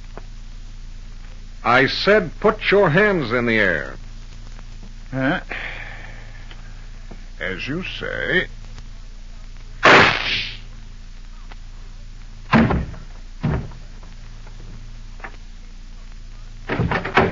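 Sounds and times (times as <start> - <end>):
faint steady hum: 0.0 - 17.3
speech: 1.6 - 4.0, 5.1 - 5.7, 7.4 - 8.6
loud gunshot from a concealed gun: 9.8 - 10.6
knocks and thuds: 12.5 - 14.1, 16.7 - 17.3.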